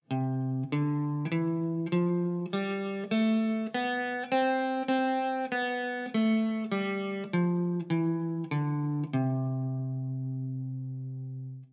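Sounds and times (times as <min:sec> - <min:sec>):
guitar playing a C major scale: 0:00.0 - 0:11.7.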